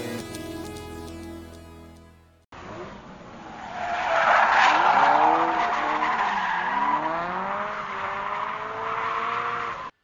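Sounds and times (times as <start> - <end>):
car tires squealing and skidding in a chase: 2.7 - 9.9.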